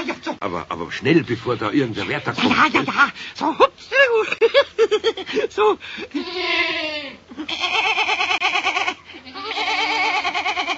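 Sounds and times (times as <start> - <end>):
speech: 0.4 - 8.3
small goat bleating at a zoo: 6.1 - 10.7.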